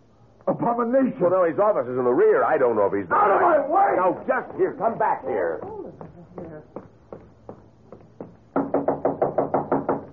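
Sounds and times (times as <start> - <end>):
speech: 0.5 - 6.0
low murmur of voices: 3.0 - 6.4
knocking on an office door in a museum: 4.3 - 10.1.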